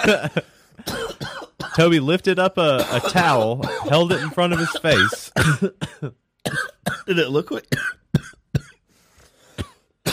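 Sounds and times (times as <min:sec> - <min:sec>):
speech: 0:00.0 - 0:01.0, 0:01.8 - 0:08.4
person coughing into the microphone: 0:00.0 - 0:01.8, 0:02.8 - 0:08.8, 0:09.5 - 0:10.1
faint breathy noise: 0:08.8 - 0:09.6.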